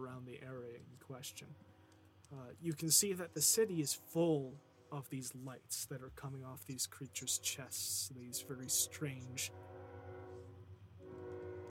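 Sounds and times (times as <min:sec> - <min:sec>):
speech: 0:00.0 - 0:10.0
low rumble of a passing train: 0:00.0 - 0:11.6
train horn blaring in a long steady chord: 0:07.2 - 0:11.6.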